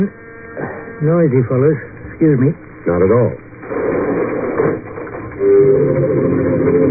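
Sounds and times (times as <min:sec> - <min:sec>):
speech: 0:00.0 - 0:00.2, 0:01.0 - 0:03.4
elevator descending slowly: 0:03.6 - 0:06.8.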